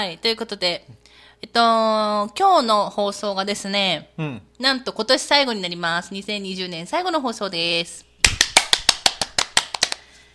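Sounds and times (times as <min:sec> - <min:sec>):
speech: 0:00.0 - 0:08.1
single person clapping hands: 0:08.2 - 0:10.1.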